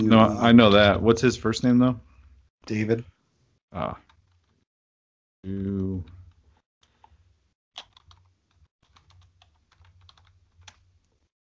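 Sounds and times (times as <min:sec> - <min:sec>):
speech: 0:00.0 - 0:03.1, 0:03.7 - 0:04.0, 0:05.4 - 0:06.2
typing on a clicky mechanical keyboard: 0:07.8 - 0:10.8.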